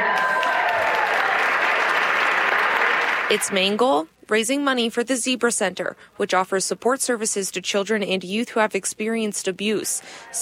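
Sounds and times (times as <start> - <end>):
sizable crowd applauding at a fundraiser: 0.0 - 3.6
speech: 3.3 - 10.4.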